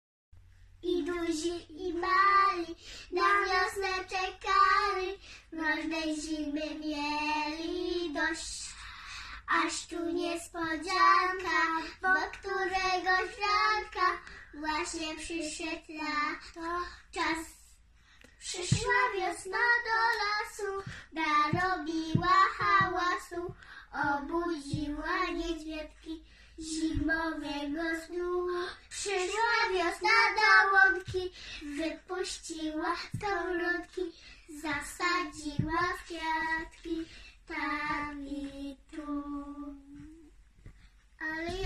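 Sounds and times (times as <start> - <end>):
girl singing a song: 0.8 - 41.6.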